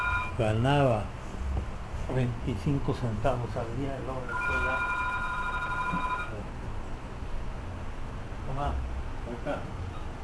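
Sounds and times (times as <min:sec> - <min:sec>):
telephone ringing with electronic trill: 0:00.0 - 0:00.4, 0:04.3 - 0:06.4
low hum: 0:00.0 - 0:10.2
speech: 0:00.4 - 0:01.2, 0:02.1 - 0:05.0, 0:05.9 - 0:06.6, 0:08.5 - 0:09.8.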